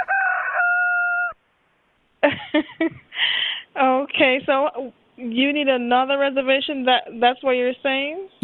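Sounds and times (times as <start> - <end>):
rooster crowing in a hotel room: 0.0 - 1.4
speech: 2.3 - 3.0, 4.2 - 8.4.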